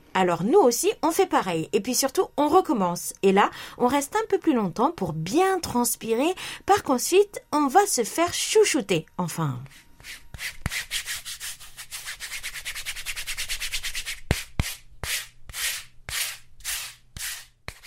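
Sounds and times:
speech: 0.2 - 11.0
exfoliating mitt scrubbing skin: 9.7 - 17.8.

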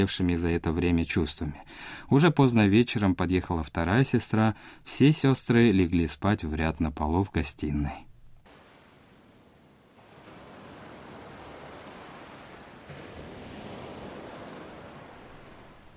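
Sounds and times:
speech: 0.0 - 8.1
ocean surf washing onto the shore: 8.4 - 15.9.

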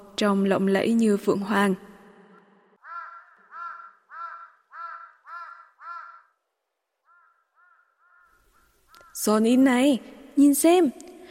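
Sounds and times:
speech: 0.2 - 1.9, 9.2 - 11.3
black crow cawing in flight over a mountainside: 2.3 - 9.3.

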